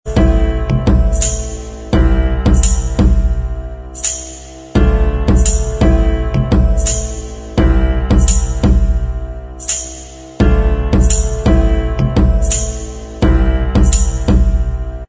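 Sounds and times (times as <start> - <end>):
instrumental backing track: 0.1 - 15.0.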